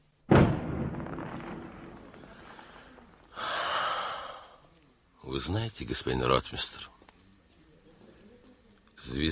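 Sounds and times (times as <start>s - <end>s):
heavy artillery boom from bastions: 0.3s - 3.4s
speech: 5.4s - 7.0s, 9.2s - 9.3s.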